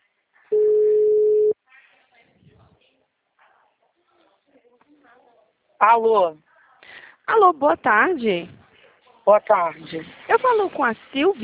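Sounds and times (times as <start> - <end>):
ringback tone on an outgoing phone call: 0.5 - 1.6
speech: 5.8 - 6.5, 7.3 - 8.6, 9.3 - 11.4.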